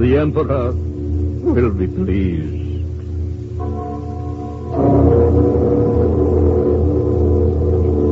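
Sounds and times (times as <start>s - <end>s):
speech: 0.0s - 2.6s
great tongueless bell cast of gold, brass, silver and iron struck: 3.6s - 8.0s.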